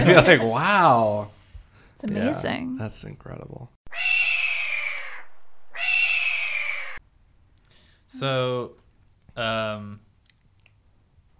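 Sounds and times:
speech: 0.0 - 1.4, 2.0 - 4.2, 8.1 - 8.8, 9.4 - 10.0
raspy hawk screams: 3.9 - 7.0.

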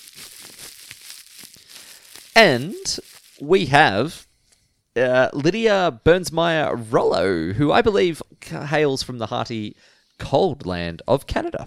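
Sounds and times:
paper slips rustling as a hand rummages in a prize-draw container: 0.0 - 3.5
speech: 2.4 - 4.3, 5.0 - 11.6.

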